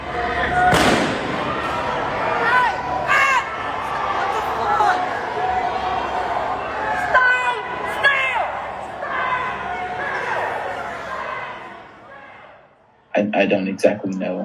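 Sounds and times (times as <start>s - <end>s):
noisy crowd shouting: 0.0s - 13.0s
police gunfire: 0.7s - 1.7s
speech: 13.5s - 14.4s.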